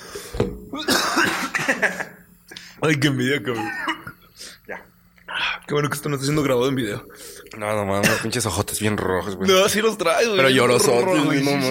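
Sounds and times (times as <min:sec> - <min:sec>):
harsh rapid coughing fit: 0:00.8 - 0:02.1, 0:08.0 - 0:08.4
laughter: 0:00.9 - 0:02.2, 0:03.5 - 0:04.2
speech: 0:02.8 - 0:03.8, 0:05.7 - 0:11.7.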